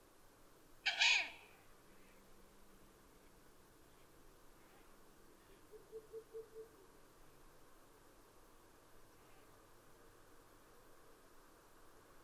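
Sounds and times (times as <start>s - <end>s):
steady background hiss: 0.0s - 12.2s
owl screech: 0.8s - 1.5s.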